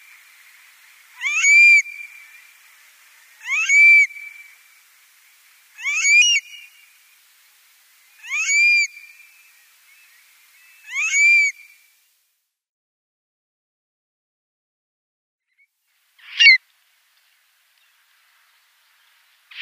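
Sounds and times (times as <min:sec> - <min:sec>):
stone curlew giving wailing whistled calls: 0:01.2 - 0:02.6, 0:03.4 - 0:04.6, 0:05.8 - 0:06.8, 0:08.2 - 0:09.4, 0:10.6 - 0:11.8, 0:16.2 - 0:16.6.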